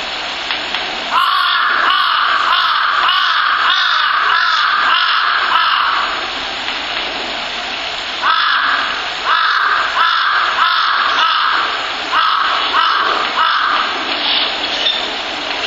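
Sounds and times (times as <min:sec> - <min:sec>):
steady loud hiss: 0:00.0 - 0:15.6
crow cawing: 0:01.1 - 0:06.3, 0:08.2 - 0:14.5.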